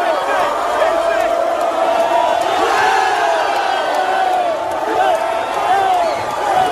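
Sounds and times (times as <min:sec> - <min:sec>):
crowd of football fans cheering and shouting in the streets in the rain: 0:00.0 - 0:06.6.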